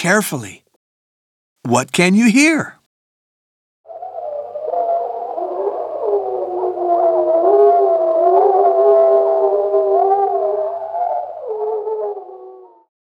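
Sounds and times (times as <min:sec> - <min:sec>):
speech: 0:00.0 - 0:00.6, 0:01.6 - 0:02.8
wolves howling in a forest in Poland: 0:03.9 - 0:12.9.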